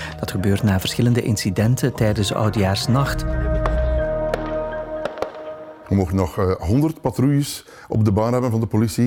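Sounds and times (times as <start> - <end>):
speech: 0.2 - 3.4, 5.9 - 9.0
fireworks rockets exploding: 3.4 - 6.0.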